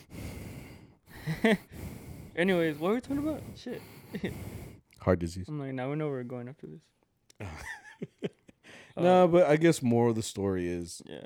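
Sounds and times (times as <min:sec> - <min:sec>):
person doing exaggerated heavy breathing: 0:00.0 - 0:05.0
speech: 0:01.3 - 0:01.8, 0:02.4 - 0:08.1, 0:09.0 - 0:11.2.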